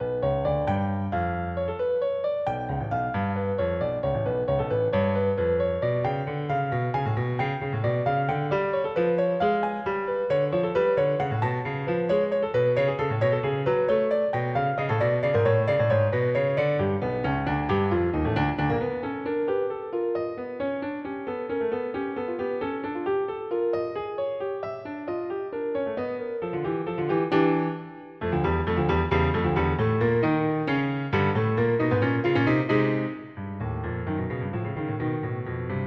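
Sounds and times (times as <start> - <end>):
piano prelude: 0.0 - 35.8.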